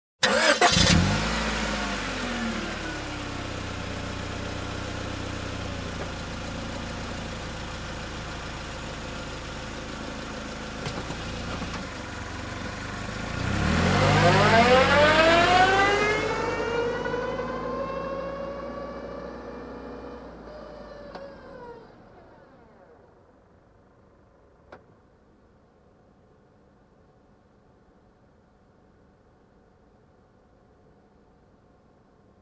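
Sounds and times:
car engine ignition: 0:00.2 - 0:23.5.

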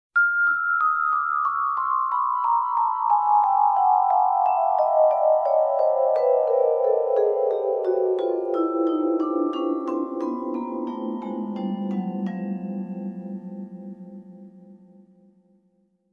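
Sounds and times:
mallet instrument playing slow descending arpeggio scale: 0:00.2 - 0:15.2.

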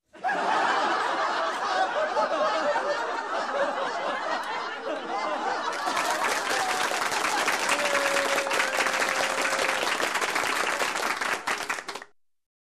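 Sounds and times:
people laughing: 0:00.1 - 0:12.0
people cheering: 0:04.1 - 0:12.1
people clapping: 0:04.4 - 0:12.2.

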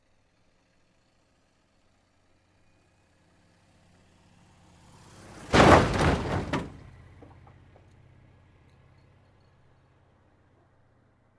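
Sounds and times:
car approaching: 0:00.2 - 0:11.3
car crash: 0:05.1 - 0:07.5.

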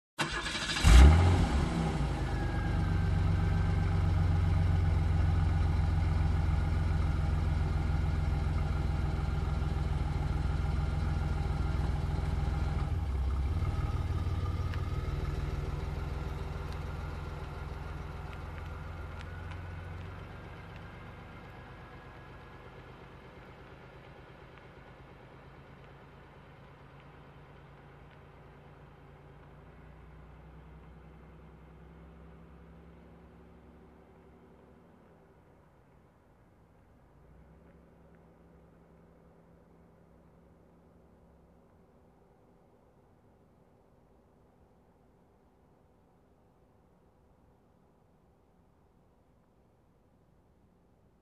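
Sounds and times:
muscle car engine starting: 0:00.2 - 0:35.4
muscle car slowly driving away: 0:00.2 - 0:41.4.

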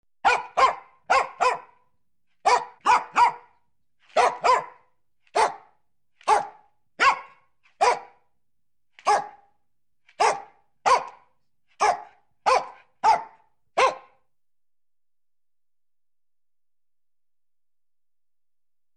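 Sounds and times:
small dog barking loudly: 0:00.2 - 0:01.8, 0:02.4 - 0:08.2, 0:09.0 - 0:09.5, 0:10.1 - 0:14.2.

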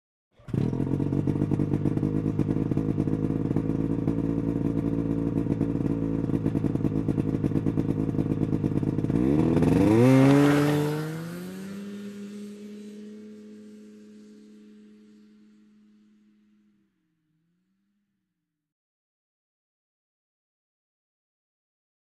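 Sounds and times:
motorcycle driving away: 0:00.4 - 0:17.8.

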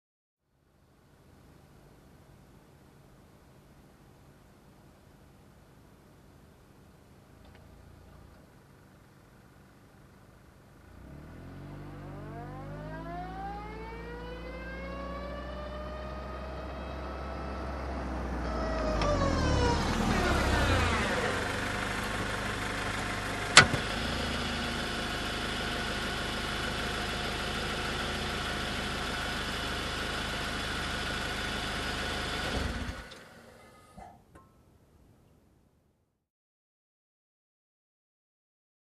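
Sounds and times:
car reversing and stopping: 0:07.4 - 0:34.1.

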